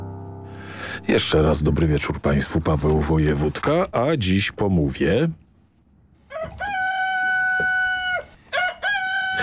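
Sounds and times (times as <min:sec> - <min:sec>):
speech: 0:01.0 - 0:05.4
faint farmyard noise: 0:02.0 - 0:09.4
rooster crowing: 0:06.3 - 0:09.4.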